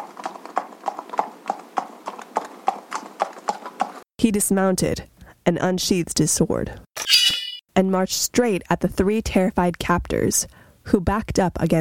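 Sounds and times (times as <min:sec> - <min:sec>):
unicorn hooves clip-clopping into a cave: 0:00.0 - 0:04.0
speech: 0:04.2 - 0:06.8, 0:07.8 - 0:11.8.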